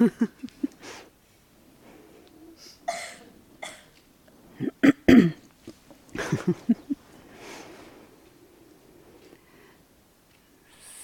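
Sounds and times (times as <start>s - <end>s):
speech: 0.0s - 0.4s
laughter: 0.0s - 0.8s, 6.1s - 7.0s
person clearing throat in gruff bursts: 4.6s - 5.4s.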